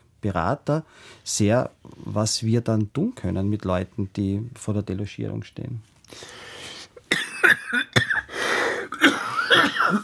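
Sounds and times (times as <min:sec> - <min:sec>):
speech: 0:00.2 - 0:06.5
person with a slight cold coughing: 0:07.0 - 0:10.0.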